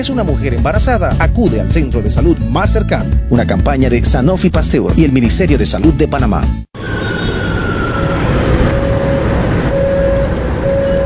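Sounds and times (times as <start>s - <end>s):
speech: 0.0s - 6.8s
metro subway train rumbling roar: 6.8s - 11.0s.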